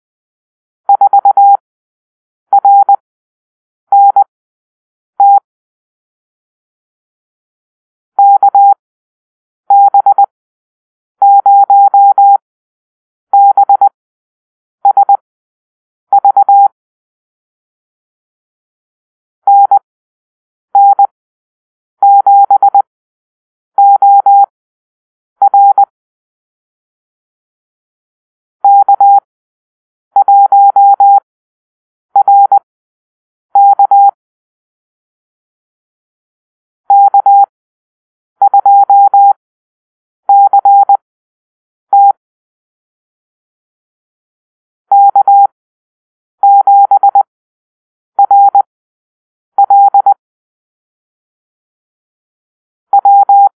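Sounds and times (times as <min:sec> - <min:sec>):
morse code call-sign drill: 0:00.9 - 0:01.6, 0:02.6 - 0:03.0, 0:03.9 - 0:04.3, 0:09.7 - 0:10.3, 0:11.3 - 0:12.4, 0:13.3 - 0:13.9, 0:14.9 - 0:15.2, 0:16.2 - 0:16.7, 0:19.5 - 0:19.9, 0:20.8 - 0:21.1, 0:22.1 - 0:22.9, 0:23.8 - 0:24.5, 0:25.4 - 0:25.9, 0:28.7 - 0:29.3, 0:30.2 - 0:31.3, 0:32.2 - 0:32.7, 0:33.6 - 0:34.2, 0:36.9 - 0:37.5, 0:38.4 - 0:39.4, 0:40.3 - 0:41.0, 0:41.9 - 0:42.1, 0:44.9 - 0:45.5, 0:46.5 - 0:47.3, 0:48.2 - 0:48.7, 0:49.6 - 0:50.2, 0:52.9 - 0:53.5.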